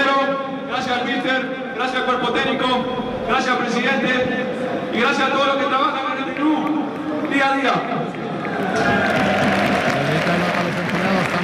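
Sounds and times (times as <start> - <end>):
murmur of voices: 0.0 - 11.4
speech: 1.8 - 9.2
crowd applause at a club event: 8.1 - 11.4.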